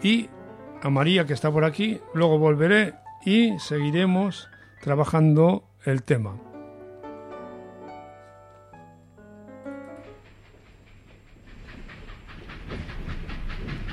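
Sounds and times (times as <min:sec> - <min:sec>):
train rolling along rails heard from the train's corridor: 0:00.0 - 0:03.9, 0:08.9 - 0:13.9
speech: 0:00.0 - 0:06.5.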